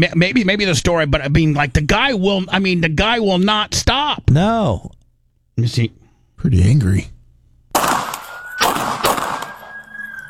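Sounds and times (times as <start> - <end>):
speech: 0.0 - 5.0, 5.6 - 7.2
gunshots fired at a man near a car: 7.7 - 10.2
thin steady high tone: 9.4 - 10.2.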